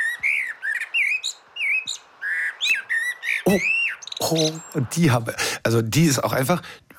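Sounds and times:
common blackbird singing: 0.0s - 5.0s
speech: 3.4s - 6.8s.

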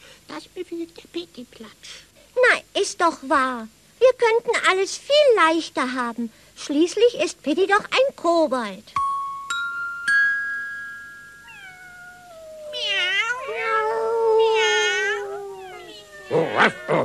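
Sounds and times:
speech: 0.3s - 9.0s
bell-like chimes: 9.0s - 11.4s
several cats meowing and yowling: 11.4s - 17.0s.

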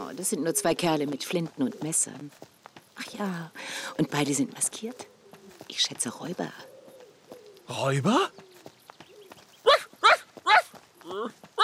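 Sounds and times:
footsteps: 0.0s - 11.6s
speech: 0.2s - 6.7s, 7.7s - 8.4s
small dog yapping: 9.7s - 10.7s.

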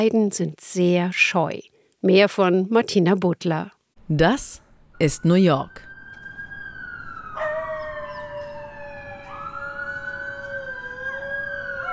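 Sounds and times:
speech: 0.0s - 5.9s
loud wailing siren: 4.9s - 11.9s
two coyotes howling in Central Park New York: 6.6s - 11.9s.

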